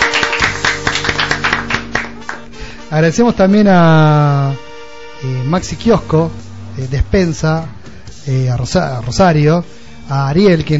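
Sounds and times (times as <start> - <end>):
audience clapping rhythmically: 0.0 - 2.6
speech: 2.9 - 4.6, 5.2 - 10.7.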